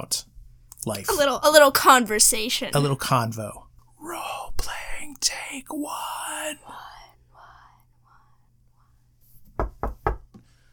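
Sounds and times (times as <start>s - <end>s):
speech: 0.1s - 3.6s, 4.6s - 6.8s
soft whispering: 4.0s - 8.9s
sharp knocks on a wooden tabletop: 9.5s - 10.4s.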